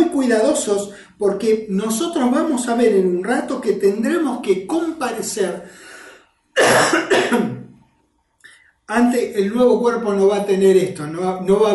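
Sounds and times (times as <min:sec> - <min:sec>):
speech: 0:00.2 - 0:05.9, 0:06.6 - 0:07.6, 0:08.9 - 0:11.7
person coughing inside a tent: 0:06.6 - 0:07.7.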